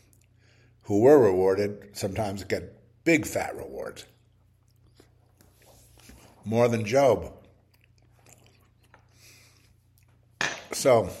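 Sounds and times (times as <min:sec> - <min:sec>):
speech: 0:00.9 - 0:04.1, 0:06.4 - 0:07.4, 0:10.8 - 0:11.1
person munching on a banana: 0:04.0 - 0:06.3, 0:07.4 - 0:10.4.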